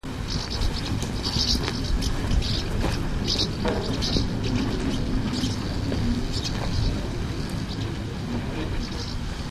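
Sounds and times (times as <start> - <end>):
common house martin calling: 0.1 - 9.4.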